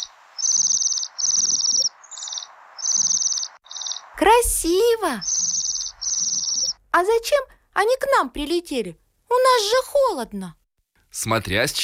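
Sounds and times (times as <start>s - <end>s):
flock of waxwings giving soft high trilling calls: 0.0s - 4.2s, 5.2s - 6.8s
steady hiss: 0.0s - 6.8s
speech: 4.2s - 5.3s, 7.0s - 10.6s, 11.2s - 11.8s.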